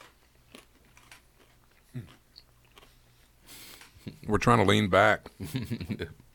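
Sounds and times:
person chewing crunchy salted peanut butter crackers: 0.0 - 4.2
speech: 4.3 - 6.2.

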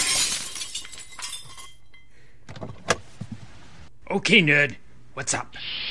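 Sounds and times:
window glass shattering: 0.0 - 1.8
window glass shards tinkling and clinking as they fall: 0.0 - 2.1
speech: 4.1 - 5.8.

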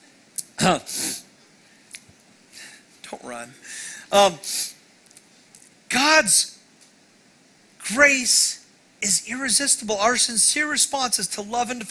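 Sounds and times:
speech: 0.6 - 1.0, 3.3 - 4.7, 6.2 - 6.5, 7.9 - 11.8
person sneezing: 0.6 - 1.3
faint sniff or throat sound: 0.9 - 1.2.

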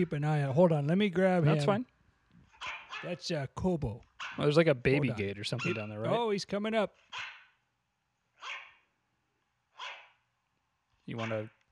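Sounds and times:
speech: 0.0 - 1.9, 2.6 - 7.3, 11.1 - 11.6
dog barking: 2.6 - 3.2, 4.2 - 4.5, 5.6 - 5.9, 7.1 - 7.6, 8.4 - 8.9, 9.8 - 10.2, 11.2 - 11.5.

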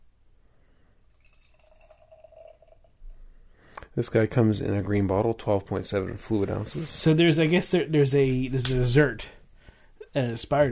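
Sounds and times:
ale brewed with almonds and cherries pouring into a glass: 1.0 - 3.1
soft clink of a glass: 1.4 - 2.9
speech: 4.0 - 9.4, 10.1 - 10.7.

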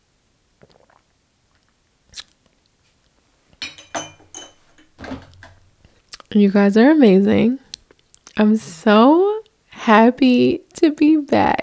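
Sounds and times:
person sipping and swallowing a shot of liquor: 0.6 - 2.4
sharp glass clink: 3.6 - 5.6
speech: 6.4 - 7.6, 8.4 - 9.2, 9.8 - 11.6.

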